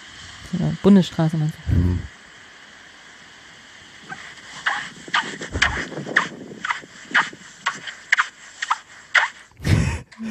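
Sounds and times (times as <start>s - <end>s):
faint wind rumble: 0.0s - 8.5s
speech: 0.5s - 2.2s
footsteps crunching and squeaking in dry beach sand: 4.1s - 9.5s.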